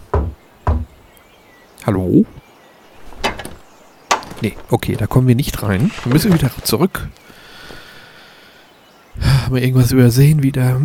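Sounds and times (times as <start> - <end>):
knocking on a wooden door: 0.0 - 1.0
speech: 1.8 - 2.4, 4.4 - 7.3, 9.5 - 10.8.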